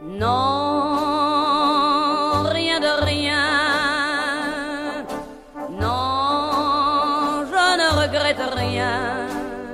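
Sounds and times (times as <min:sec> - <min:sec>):
vintage French chanson vocal with strong vibrato: 0:00.0 - 0:09.7
speech: 0:00.1 - 0:00.6
sustained orchestral accompaniment with deep bass notes: 0:02.4 - 0:09.7.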